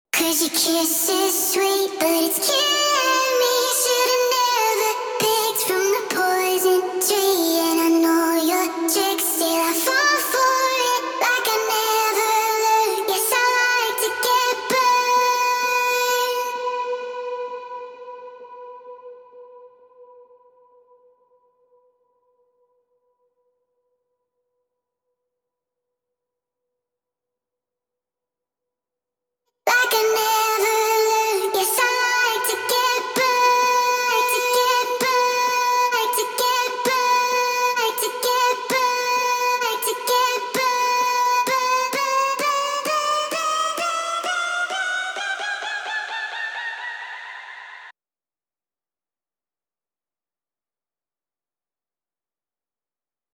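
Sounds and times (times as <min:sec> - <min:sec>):
a cappella singing: 0:00.2 - 0:19.7, 0:29.7 - 0:47.9.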